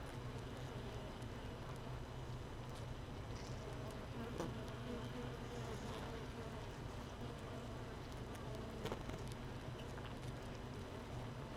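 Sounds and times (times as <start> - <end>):
faint ticks and taps: 0.0 - 4.8, 7.1 - 11.0
honey bee hive without a queen buzzing: 0.0 - 11.5.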